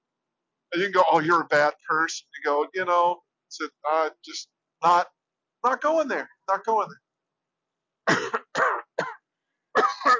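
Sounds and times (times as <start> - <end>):
speech: 0.7 - 7.0, 8.1 - 8.3
person with a lingering cough coughing harshly: 8.1 - 9.2, 9.8 - 10.1.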